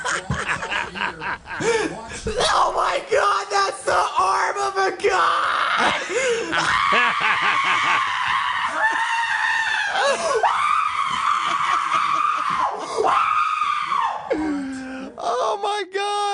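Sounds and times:
laughter: 0:00.0 - 0:02.4, 0:05.7 - 0:10.4
speech: 0:01.6 - 0:02.7
person screaming in excitement: 0:02.3 - 0:16.3
breathy gasps: 0:06.0 - 0:06.6, 0:14.3 - 0:15.2.

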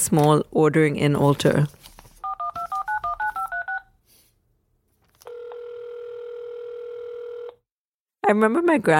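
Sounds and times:
speech: 0:00.1 - 0:01.9, 0:08.3 - 0:08.9
landline telephone keypad dialing tones: 0:02.2 - 0:03.9, 0:05.2 - 0:07.6.

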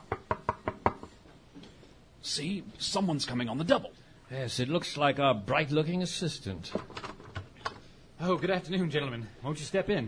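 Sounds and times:
knocking on a wooden shop door: 0:00.0 - 0:01.1
speech: 0:02.2 - 0:07.0, 0:08.2 - 0:10.0.

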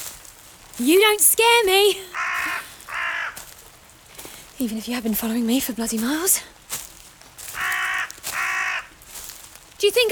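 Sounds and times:
speech: 0:00.8 - 0:02.3, 0:04.6 - 0:06.6, 0:09.8 - 0:10.0
crow cawing in a forest: 0:02.1 - 0:03.6, 0:07.4 - 0:09.0.

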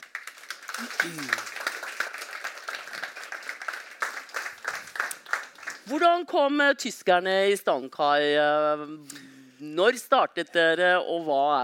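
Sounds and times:
audience applauding: 0:00.0 - 0:05.9
person whooping: 0:00.8 - 0:01.4
speech: 0:00.8 - 0:01.6, 0:05.9 - 0:11.6.

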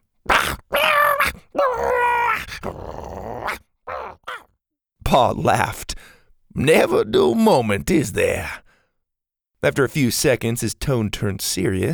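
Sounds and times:
Triceratops growling while locking horns: 0:00.3 - 0:04.5
speech: 0:05.1 - 0:05.8, 0:06.6 - 0:08.6, 0:09.6 - 0:11.9.

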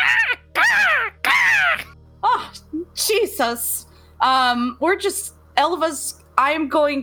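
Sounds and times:
panicked raven indoors cawing: 0:00.0 - 0:02.0
speech: 0:03.4 - 0:07.0.

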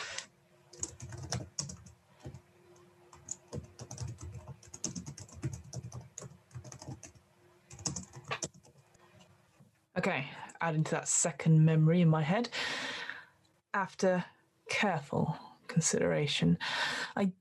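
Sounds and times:
typing on a computer keyboard: 0:00.7 - 0:09.0
speech: 0:10.0 - 0:12.8, 0:13.8 - 0:17.4.

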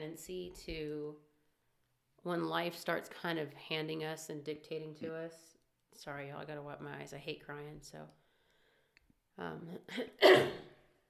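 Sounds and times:
speech: 0:00.1 - 0:01.3, 0:02.2 - 0:08.2, 0:09.4 - 0:10.7
harsh cough: 0:09.9 - 0:10.8.

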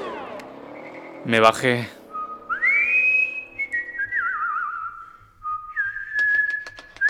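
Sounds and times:
speech: 0:01.3 - 0:02.0
person whistling a melody: 0:02.1 - 0:07.0.

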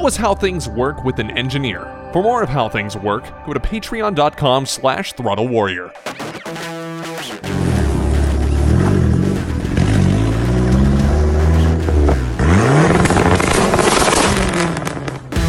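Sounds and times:
speech: 0:00.0 - 0:06.2
turbocharged Dodge Neon SRT4 engine revving: 0:07.4 - 0:15.4.

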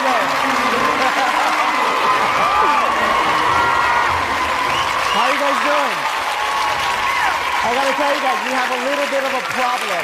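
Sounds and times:
large crowd clapping and cheering: 0:00.0 - 0:10.0
whoops and shouting voices: 0:01.1 - 0:08.2
speech: 0:07.7 - 0:10.0.

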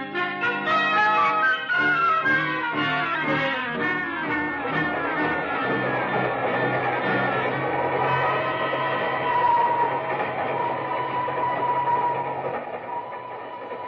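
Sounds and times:
train running on the rails: 0:00.0 - 0:13.8.

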